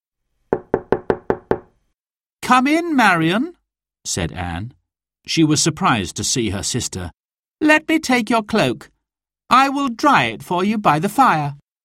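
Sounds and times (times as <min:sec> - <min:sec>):
knocking on a wooden door: 0:00.5 - 0:01.8
speech: 0:02.5 - 0:08.9, 0:09.5 - 0:11.6.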